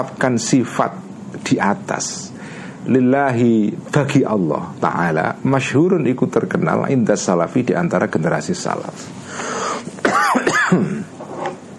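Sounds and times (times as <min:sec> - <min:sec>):
speech: 0:00.0 - 0:11.2
faint breathy sound: 0:09.2 - 0:09.9
man coughing harshly: 0:10.0 - 0:11.2.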